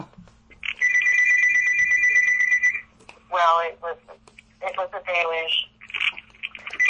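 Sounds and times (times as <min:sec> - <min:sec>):
landline telephone ringing with electronic trill: 0:00.6 - 0:02.9, 0:06.7 - 0:06.8
people talking: 0:03.3 - 0:05.7.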